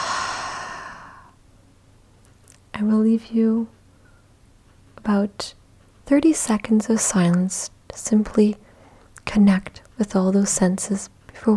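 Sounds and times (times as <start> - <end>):
slow deep breath in and out: 0.0 - 1.4
speech: 2.8 - 3.8, 5.0 - 8.6, 9.2 - 11.5.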